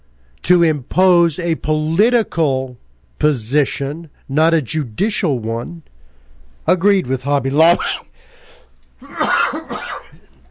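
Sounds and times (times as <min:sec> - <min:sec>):
speech: 0:00.5 - 0:05.9, 0:06.7 - 0:08.1, 0:09.0 - 0:09.9
person with an allergy coughing: 0:07.7 - 0:08.1, 0:09.0 - 0:10.4.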